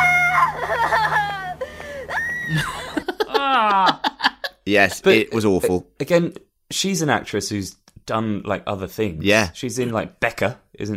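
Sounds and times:
woman screaming from a film: 0:00.0 - 0:04.1
laughter: 0:00.4 - 0:01.6, 0:02.5 - 0:05.8
speech: 0:04.7 - 0:10.9.

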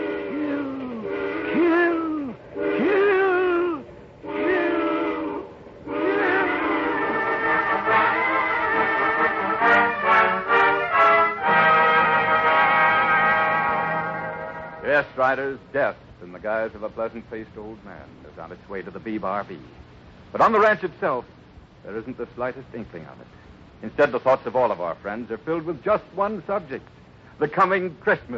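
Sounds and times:
steam train whistle shrieking: 0:00.0 - 0:15.1
low rumble of the moving train: 0:00.0 - 0:28.3
speech: 0:01.5 - 0:01.8, 0:15.1 - 0:28.3.

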